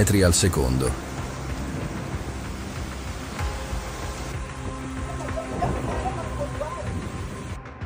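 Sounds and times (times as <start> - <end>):
speech: 0.0 - 1.1
heavy torrential rain pouring during a flood emergency: 0.0 - 7.6.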